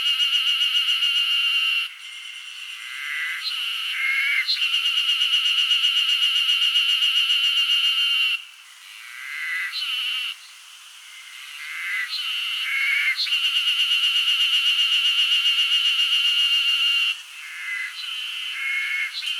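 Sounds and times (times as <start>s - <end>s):
wild cicadas screeing in Hokkaido: 0.0s - 19.3s
speech: 4.5s - 4.7s.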